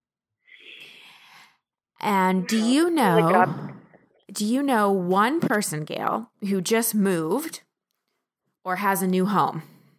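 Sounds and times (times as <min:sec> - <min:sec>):
deep airy breath in and out: 0:00.5 - 0:01.6
speech: 0:02.0 - 0:07.7, 0:08.6 - 0:09.7.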